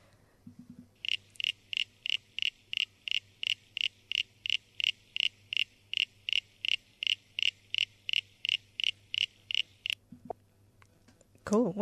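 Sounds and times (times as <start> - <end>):
eastern common froglet calling in cricket-like creaks: 1.0 - 10.0
speech: 11.5 - 11.8.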